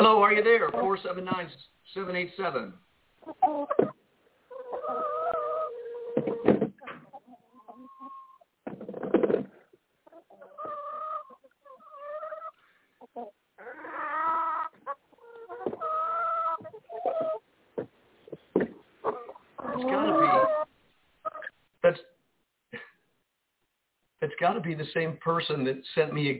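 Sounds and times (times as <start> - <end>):
speech: 0.0 - 4.0, 24.4 - 26.3
chicken clucking through a telephone line: 0.3 - 1.3, 3.2 - 21.6.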